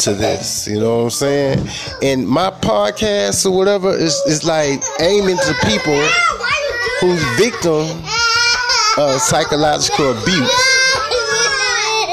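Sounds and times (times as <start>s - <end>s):
adult talking: 0.0s - 8.2s, 8.9s - 10.8s
speech: 0.0s - 8.2s, 9.0s - 10.8s
young children whining, fussing and chattering: 1.6s - 2.1s, 3.8s - 12.1s.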